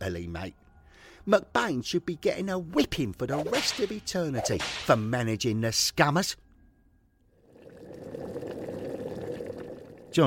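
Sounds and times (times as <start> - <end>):
speech: 0.1 - 0.6, 1.2 - 6.4
river of boiling blood flowing: 7.4 - 10.2.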